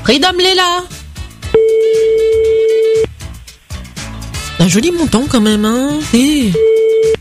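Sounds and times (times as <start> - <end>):
soft rhythmic music: 0.0 - 7.1
speech: 0.1 - 1.0, 4.6 - 7.1
ring tone of an outgoing phone call: 1.6 - 3.1, 6.5 - 7.1.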